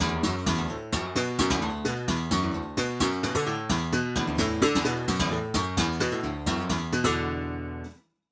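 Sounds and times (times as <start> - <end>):
instrument strumming: 0.0 - 7.9.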